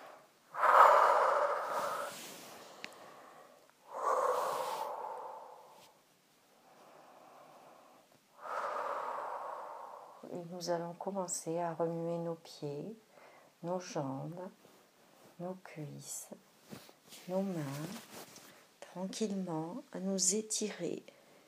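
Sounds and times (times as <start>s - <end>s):
deep breathing during a guided relaxation exercise: 0.0s - 6.0s, 6.6s - 10.3s
speech: 10.5s - 14.6s, 15.4s - 18.2s, 19.0s - 21.2s.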